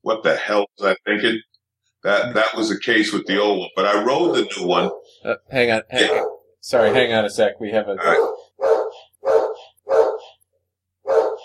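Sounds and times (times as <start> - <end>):
speech: 0.1 - 8.3
dog barking: 4.2 - 5.2, 6.0 - 7.1, 8.0 - 10.4, 11.0 - 11.4.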